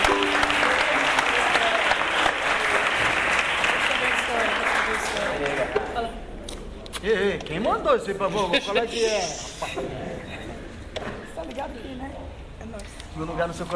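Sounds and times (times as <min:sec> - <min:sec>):
audience applauding: 0:00.0 - 0:05.9
speech: 0:07.5 - 0:10.1, 0:11.7 - 0:13.7.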